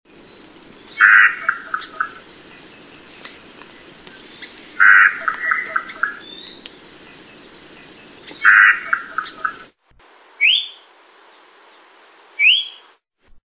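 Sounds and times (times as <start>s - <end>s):
Akohekohe calling: 0.2s - 9.7s, 10.4s - 10.9s, 12.4s - 12.9s.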